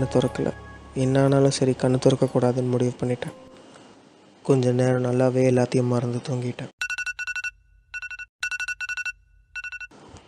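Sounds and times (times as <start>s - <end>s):
speech: 0.0s - 3.5s, 4.4s - 6.8s
phone alarm beeping: 6.8s - 9.9s.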